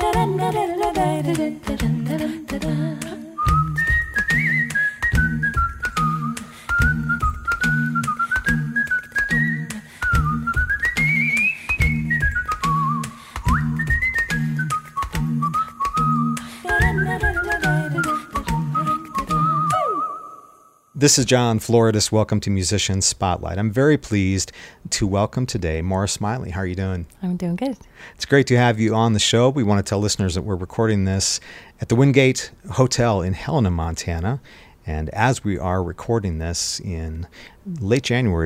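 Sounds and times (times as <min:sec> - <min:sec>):
speech: 0:00.2 - 0:03.2, 0:21.0 - 0:38.4
person whistling a lively melody: 0:03.3 - 0:20.8.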